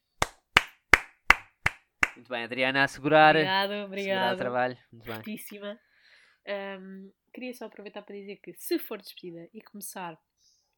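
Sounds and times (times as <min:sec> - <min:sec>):
sharp hand claps by one person: 0:00.2 - 0:02.2
speech: 0:02.2 - 0:10.3.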